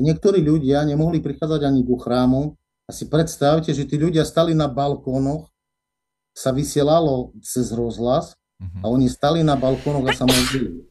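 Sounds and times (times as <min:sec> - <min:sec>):
speech: 0:00.0 - 0:05.5, 0:06.4 - 0:10.9
person sneezing: 0:09.5 - 0:10.9.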